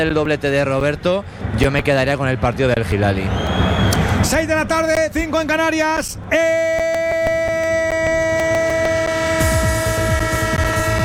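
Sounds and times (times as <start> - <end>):
speech: 0.0 - 3.6, 4.2 - 7.1
rapid rhythmic clicking: 6.5 - 11.0
train horn blare: 7.4 - 11.0.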